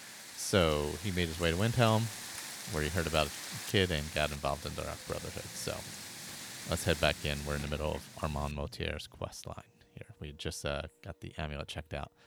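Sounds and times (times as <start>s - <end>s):
heavy rainstorm: 0.0s - 8.5s
speech: 0.5s - 12.2s.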